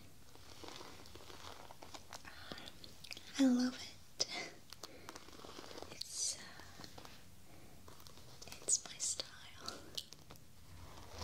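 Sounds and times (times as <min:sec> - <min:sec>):
pencil case rustling and crinkling as it is handled: 0:00.2 - 0:02.8, 0:04.7 - 0:08.9, 0:09.6 - 0:11.2
speech: 0:03.4 - 0:03.9.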